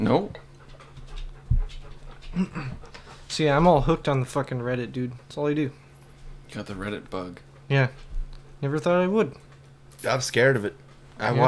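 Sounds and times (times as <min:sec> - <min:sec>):
speech: 0:00.0 - 0:00.4, 0:02.3 - 0:05.8, 0:06.5 - 0:09.4, 0:10.0 - 0:11.4
heavy breathing against a microphone: 0:00.0 - 0:04.1
faint steady hum: 0:00.0 - 0:11.4.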